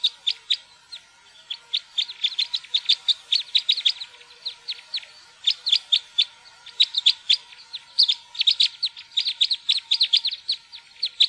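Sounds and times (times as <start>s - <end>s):
faint steady hum: 0.0s - 11.2s
red crossbill chipping calls: 0.0s - 11.2s.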